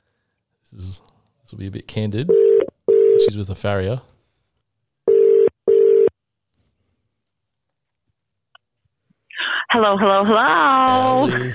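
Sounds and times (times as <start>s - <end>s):
speech: 0.7s - 2.6s, 3.2s - 4.1s, 9.7s - 11.5s
outgoing phone call ringback tone double beeps: 2.3s - 3.3s, 5.1s - 6.1s.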